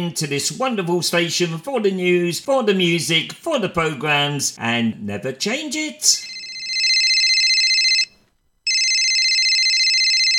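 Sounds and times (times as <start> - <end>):
speech: 0.0 - 6.3
telephone ringing for an incoming call with electronic warble: 6.1 - 10.3.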